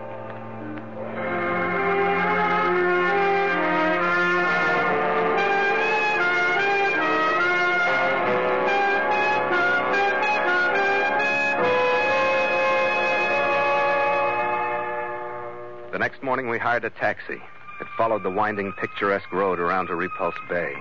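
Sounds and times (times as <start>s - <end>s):
several deep foghorns droning across open water in a foggy harbor: 0.0s - 16.9s
speech: 16.4s - 20.8s.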